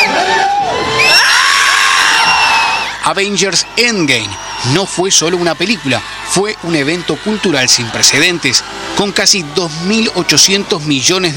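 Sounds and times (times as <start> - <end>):
high whoops and screams from a movie theater crowd: 0.0 - 8.7
large crowd in a movie theater shouting and cheering: 0.0 - 11.3
speech: 3.1 - 11.3.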